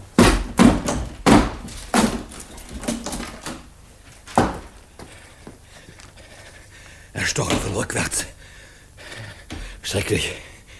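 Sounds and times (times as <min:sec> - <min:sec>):
heavy blows breaking in a locked door: 0:00.0 - 0:04.9, 0:07.3 - 0:07.9
speech: 0:07.2 - 0:08.4, 0:09.9 - 0:10.5.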